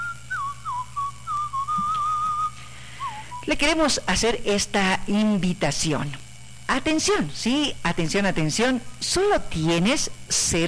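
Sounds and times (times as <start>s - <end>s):
person whistling a short tune: 0.0s - 3.5s
speech: 3.5s - 10.6s.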